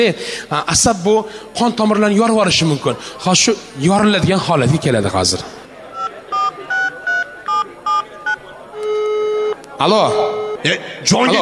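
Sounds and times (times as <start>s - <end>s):
speech: 0.0s - 5.6s, 9.8s - 11.4s
telephone keypad tones as a number is dialed: 6.0s - 9.6s, 10.2s - 10.6s.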